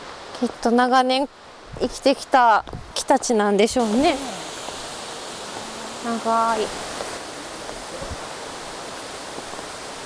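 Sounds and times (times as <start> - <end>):
speech: 0.4 - 4.4, 6.0 - 6.9
waterfall roar heard from below at its base: 2.0 - 10.0.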